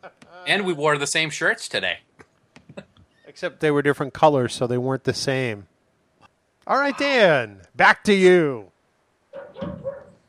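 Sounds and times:
speech: 0.0s - 2.1s, 3.4s - 5.7s, 6.6s - 8.7s
puppy barking: 9.4s - 10.2s.

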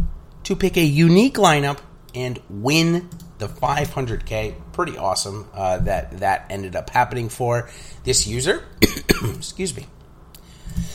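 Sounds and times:
speech: 0.5s - 10.0s
person coughing harshly: 8.8s - 9.4s.

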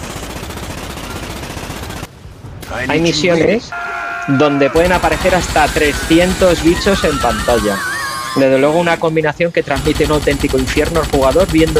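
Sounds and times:
speech: 2.7s - 11.7s
laughter: 4.4s - 9.1s
machine gun fire in a video game about shooting giant insects: 4.9s - 7.8s, 9.8s - 11.7s.

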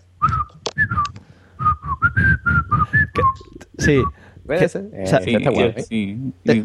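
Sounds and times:
person whistling a short melodic tune: 0.2s - 4.2s
speech: 3.8s - 6.6s.

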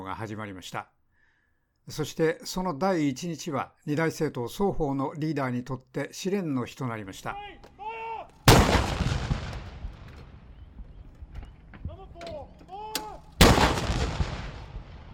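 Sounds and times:
speech: 0.1s - 1.0s, 1.8s - 7.7s
cannon booms of ceremonial artillery salute: 8.4s - 12.1s, 13.0s - 15.1s
birds calling: 10.0s - 13.5s.

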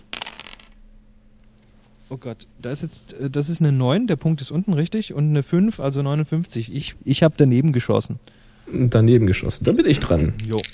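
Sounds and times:
dice rolled clattering across a hard surface: 0.0s - 0.8s, 10.4s - 10.7s
faint hum: 0.0s - 10.7s
speech: 2.1s - 10.7s.

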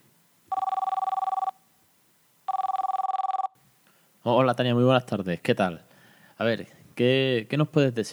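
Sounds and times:
outgoing phone call warbling electronic ringback tone: 0.5s - 1.6s, 2.5s - 3.6s
speech: 4.2s - 8.1s.

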